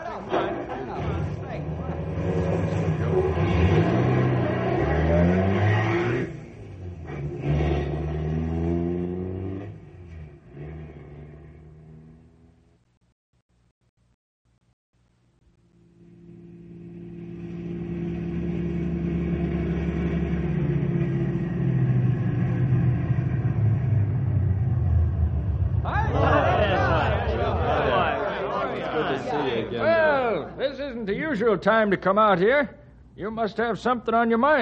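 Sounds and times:
car engine revving: 0:01.0 - 0:12.7, 0:16.2 - 0:28.4
laughter: 0:25.9 - 0:30.6
speech: 0:31.5 - 0:34.6.

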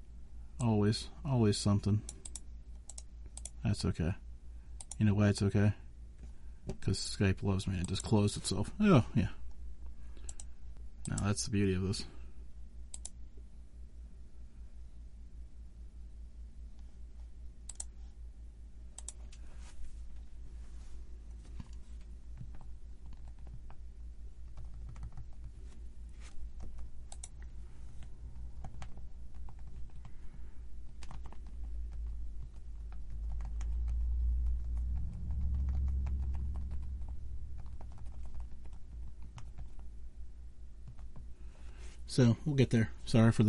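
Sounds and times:
low steady rumble: 0:00.0 - 0:43.4
speech: 0:00.9 - 0:02.2, 0:03.6 - 0:04.2, 0:05.0 - 0:05.8, 0:06.7 - 0:09.4, 0:11.1 - 0:12.2, 0:42.2 - 0:43.4
typing on a computer keyboard: 0:22.4 - 0:23.8, 0:24.5 - 0:25.5, 0:26.6 - 0:27.5, 0:28.6 - 0:30.2, 0:30.8 - 0:39.8.

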